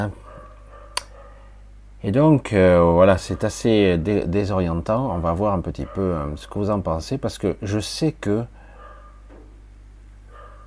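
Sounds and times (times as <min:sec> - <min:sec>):
speech: 0:00.0 - 0:00.2, 0:02.0 - 0:08.6
low hum: 0:00.0 - 0:10.6
dog barking: 0:00.2 - 0:01.5, 0:05.8 - 0:06.3, 0:08.7 - 0:09.3, 0:10.3 - 0:10.6.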